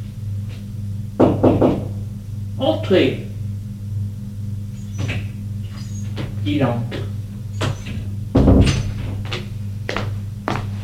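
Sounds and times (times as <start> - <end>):
steady low hum: 0.0 - 10.8
quick knocks on a door: 1.2 - 2.0, 7.0 - 9.4
speech: 2.6 - 3.3, 6.4 - 7.0
dull bumps: 5.0 - 10.7.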